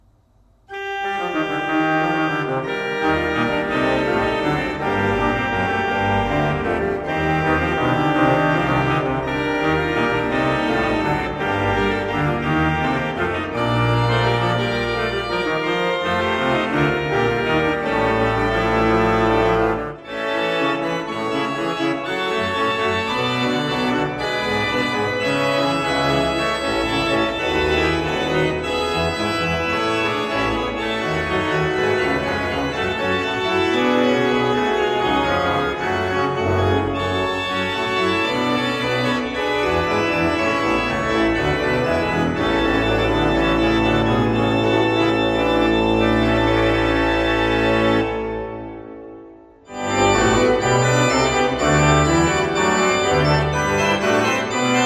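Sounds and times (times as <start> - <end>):
Verschueren 20 II P pipe organ: 0.5 - 54.8.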